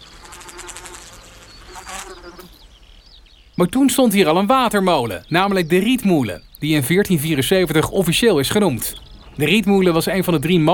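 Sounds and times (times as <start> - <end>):
dense swarm of mosquitoes buzzing over a damp wetland: 0.0 - 2.6
speech: 3.6 - 10.7.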